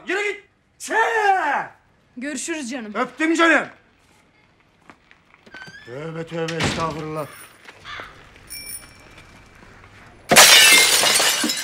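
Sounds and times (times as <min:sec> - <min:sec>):
speech: 0:00.3 - 0:03.8, 0:05.9 - 0:07.5
faint ringing bell-like tone: 0:08.5 - 0:09.5
window pane broken by someone shattering: 0:10.3 - 0:11.6.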